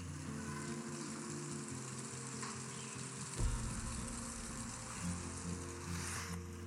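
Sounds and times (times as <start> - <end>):
fine hail pattering on dry sawtooth oak leaves in a winter storm: 0.2 - 6.6.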